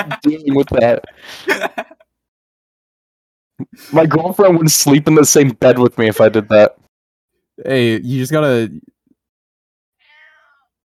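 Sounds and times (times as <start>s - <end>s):
speech: 0.0s - 2.0s, 3.8s - 6.8s, 7.6s - 8.9s
laughter: 0.0s - 2.1s, 6.0s - 6.7s
drawn-out cat meow: 10.0s - 10.8s.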